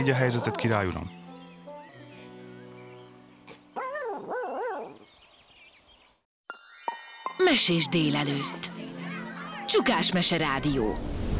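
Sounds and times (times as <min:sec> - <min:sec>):
speech: 0:00.0 - 0:01.2, 0:07.4 - 0:08.7, 0:09.7 - 0:11.3
burst of music: 0:00.0 - 0:04.0, 0:06.4 - 0:11.1
dog barking in wavering yelps: 0:03.8 - 0:05.0.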